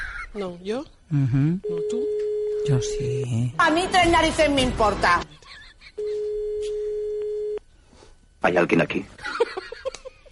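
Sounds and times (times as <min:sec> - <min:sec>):
speech: 0:00.4 - 0:06.2, 0:08.4 - 0:09.9
telephone ringing with a steady electronic tone: 0:01.7 - 0:03.0, 0:06.0 - 0:07.6.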